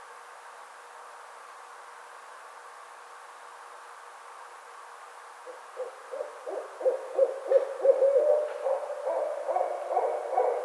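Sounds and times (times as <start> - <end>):
barred owl hooting: 5.5 - 10.6.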